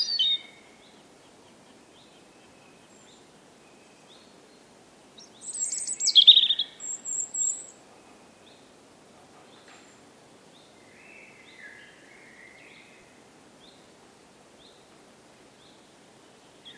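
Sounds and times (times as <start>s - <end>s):
European robin singing: 0.0s - 8.8s, 9.5s - 13.9s
soft background hiss: 0.0s - 16.7s.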